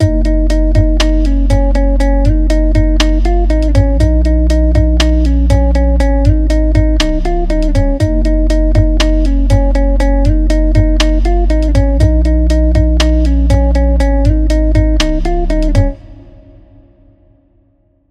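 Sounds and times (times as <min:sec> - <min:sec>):
guitar: 0:00.0 - 0:16.9.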